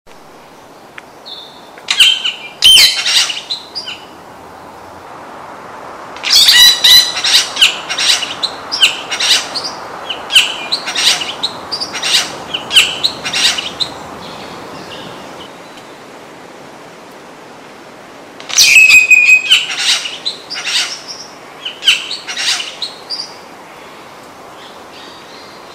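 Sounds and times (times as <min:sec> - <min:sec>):
Scenopoeetes dentirostris tooth-billed bowerbird calling: 0:01.2 - 0:04.2, 0:06.2 - 0:15.8, 0:18.4 - 0:25.7.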